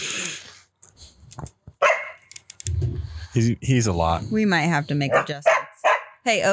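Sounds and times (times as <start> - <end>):
dog barking: 1.8 - 2.3, 5.0 - 6.3
speech: 3.4 - 5.6, 6.2 - 6.5.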